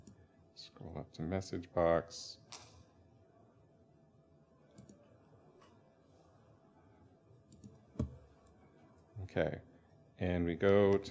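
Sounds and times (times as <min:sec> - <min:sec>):
quiet hum: 0:00.0 - 0:11.0
speech: 0:00.6 - 0:02.5, 0:09.3 - 0:11.0
computer mouse clicks: 0:04.7 - 0:05.0, 0:07.5 - 0:08.2.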